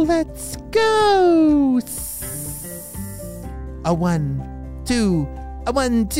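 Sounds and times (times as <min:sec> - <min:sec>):
speech: 0:00.0 - 0:02.0, 0:03.8 - 0:06.1
snakes slithering and hissing: 0:01.9 - 0:03.6.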